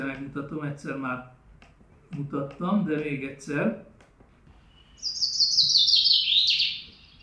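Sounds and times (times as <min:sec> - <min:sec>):
speech: 0:00.1 - 0:01.4, 0:02.1 - 0:03.9
common chaffinch singing: 0:04.6 - 0:07.2.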